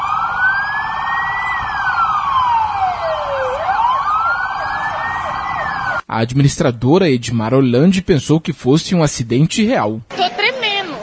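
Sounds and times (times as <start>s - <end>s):
fire brigade, military police and SAMU ambulance sirens wailing at accident simulation: 0.0s - 6.0s
speech: 6.1s - 10.1s.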